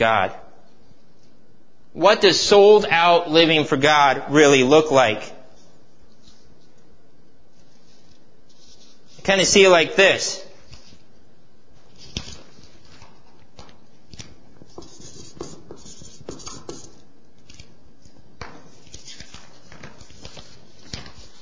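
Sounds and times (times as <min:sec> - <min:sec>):
speech: 0:00.0 - 0:00.4, 0:02.0 - 0:05.3, 0:09.3 - 0:10.4
pen scratching across paper while signing: 0:14.6 - 0:17.0.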